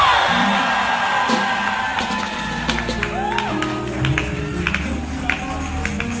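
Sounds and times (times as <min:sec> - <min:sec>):
large church audience screaming and cheering: 0:00.0 - 0:06.1.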